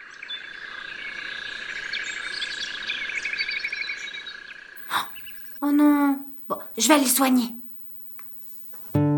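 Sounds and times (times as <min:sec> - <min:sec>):
steady insect-like hum: 0:00.0 - 0:09.0
small fallen baby bird chirping: 0:04.8 - 0:06.8
speech: 0:05.6 - 0:07.6.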